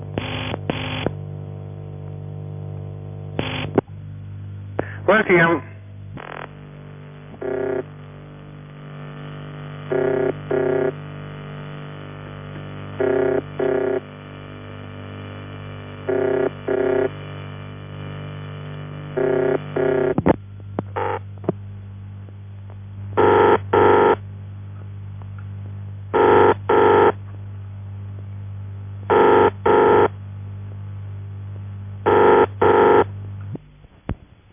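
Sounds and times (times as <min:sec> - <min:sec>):
steady low electrical hum: 0:00.0 - 0:34.5
speech: 0:05.1 - 0:05.7
ringing tone of an old telephone exchange ringing machine: 0:07.4 - 0:07.9, 0:09.9 - 0:11.0, 0:13.0 - 0:14.0, 0:16.1 - 0:17.1, 0:19.2 - 0:20.1, 0:21.0 - 0:21.2, 0:23.2 - 0:24.2, 0:26.2 - 0:27.2, 0:29.1 - 0:30.1, 0:32.1 - 0:33.0.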